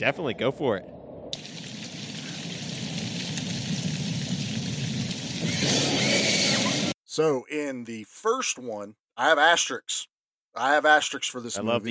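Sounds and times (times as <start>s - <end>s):
speech: 0.0s - 1.0s, 7.2s - 11.9s
steady rain: 1.4s - 6.9s.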